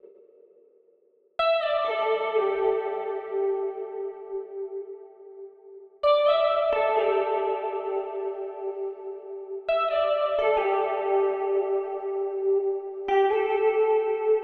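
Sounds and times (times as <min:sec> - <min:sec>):
live electric guitar in E minor with reverb: 0:01.4 - 0:14.4.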